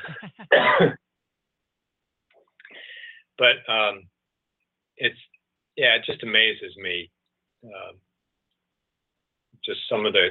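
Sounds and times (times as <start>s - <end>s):
man clearing throat: 0.0s - 1.0s
man coughing harshly: 0.0s - 1.0s
speech: 0.8s - 1.0s, 3.4s - 4.1s, 5.0s - 8.0s, 9.6s - 10.2s.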